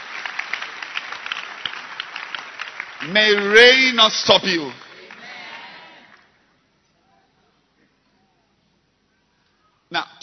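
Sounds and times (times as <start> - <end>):
church congregation clapping hands: 0.0 - 6.6
speech: 3.0 - 4.8.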